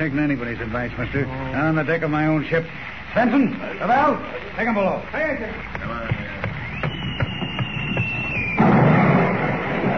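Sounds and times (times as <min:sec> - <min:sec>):
speech: 0:00.0 - 0:06.5
sharp pops: 0:05.6 - 0:09.6
artillery shell fired across a ship's bow whistling: 0:06.3 - 0:09.9
loud rushing burst of an artillery shell: 0:08.0 - 0:09.9.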